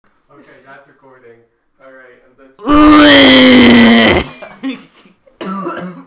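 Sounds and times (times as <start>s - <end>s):
speech: 0.3s - 5.9s
soft throaty vocal sounds: 2.7s - 4.3s
loud rough cough: 5.4s - 6.0s.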